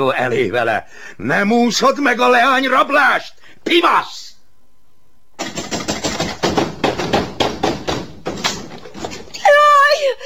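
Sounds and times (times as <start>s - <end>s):
speech: 0.0s - 4.3s
door being battered and broken in: 5.4s - 9.4s.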